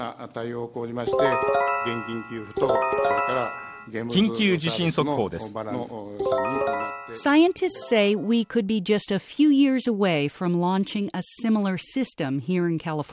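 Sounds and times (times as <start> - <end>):
speech: 0.0 - 13.1
earthquake early warning chime on Japanese television: 1.1 - 4.4, 6.3 - 8.6.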